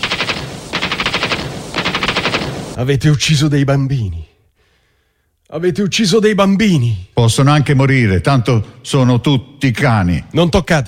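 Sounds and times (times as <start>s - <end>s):
machine gun fire during an armed raid on a hospital: 0.0s - 2.8s
speech: 2.8s - 4.3s, 5.5s - 10.8s.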